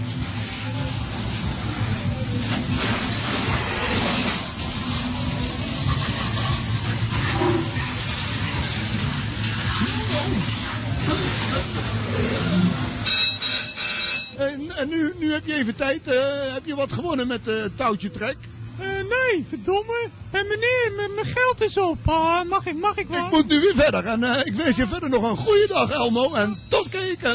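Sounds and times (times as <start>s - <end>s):
water spraying from a hose at a fairground squirting game: 0.0s - 13.1s
busy noise at a fairground: 0.0s - 27.3s
speech: 15.4s - 18.5s, 19.1s - 27.3s.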